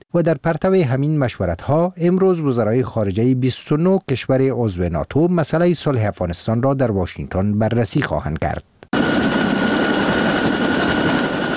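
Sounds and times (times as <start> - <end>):
speech: 0.1 - 8.7
military helicopters flying overhead: 9.0 - 11.5.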